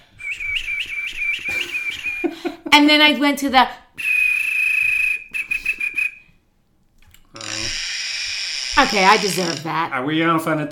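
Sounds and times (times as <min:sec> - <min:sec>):
human whistle warbling with lip wiggled by finger: 0:00.1 - 0:02.3, 0:04.0 - 0:06.3
speech: 0:02.7 - 0:03.8, 0:08.8 - 0:10.7.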